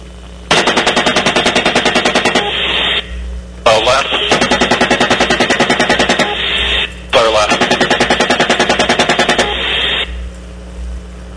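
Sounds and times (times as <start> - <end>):
steady mechanical hum: 0.0 - 11.3
rapid automatic gunfire aimed at a disabled van: 0.5 - 2.8, 4.2 - 6.4, 7.4 - 9.8.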